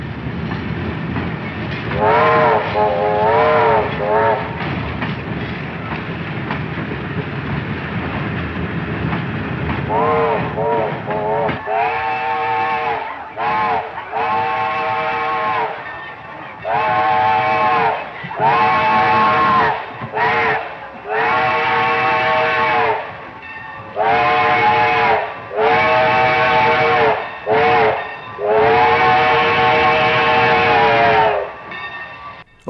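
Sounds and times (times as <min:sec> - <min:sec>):
train engine rumbling through a narrow passageway: 0:00.0 - 0:32.6
train horn long wavering blasts: 0:01.9 - 0:04.6, 0:09.9 - 0:16.0, 0:16.6 - 0:23.2, 0:23.9 - 0:31.6.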